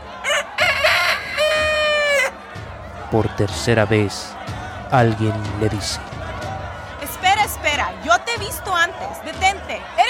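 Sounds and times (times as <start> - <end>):
rooster crowing: 0.2 - 2.4
speech: 3.1 - 6.1, 8.4 - 10.0.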